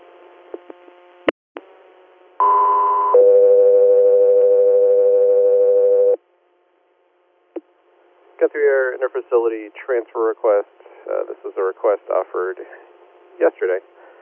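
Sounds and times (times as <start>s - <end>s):
two-tone dispatch paging alert: 2.4s - 6.2s
speech: 8.4s - 13.9s.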